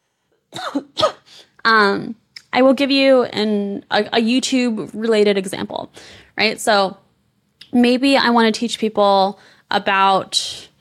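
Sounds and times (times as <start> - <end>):
person coughing: 0.5 - 1.5
speech: 1.6 - 7.0, 7.7 - 10.7.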